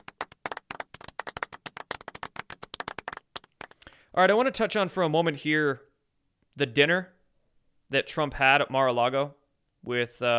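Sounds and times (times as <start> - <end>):
brisk hand clapping: 0.0 - 4.0
speech: 4.2 - 5.9, 6.6 - 7.2, 7.9 - 10.3.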